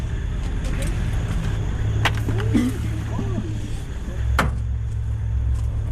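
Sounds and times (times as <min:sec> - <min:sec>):
steady low 4x4 vehicle engine rumble: 0:00.0 - 0:05.9
people murmuring: 0:02.1 - 0:04.4
4x4 vehicle doors thudding shut: 0:04.4 - 0:04.7.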